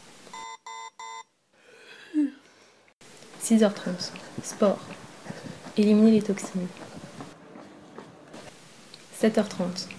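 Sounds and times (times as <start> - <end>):
soft rustling movement: 0.0 - 0.4, 3.0 - 7.4, 8.0 - 9.9
alarm clock beeping: 0.0 - 1.3
speech: 3.5 - 5.0, 5.8 - 6.9, 9.2 - 9.9.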